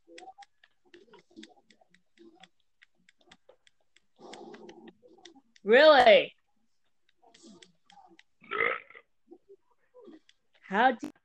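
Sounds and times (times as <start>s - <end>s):
speech: 5.7s - 6.4s, 10.7s - 11.1s
loud gurgling burp: 8.4s - 9.0s.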